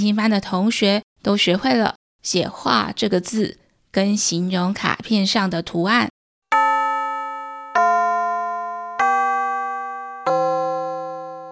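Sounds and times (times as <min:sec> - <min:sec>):
speech: 0:00.0 - 0:06.2
school bell chime for end of class: 0:06.5 - 0:11.4.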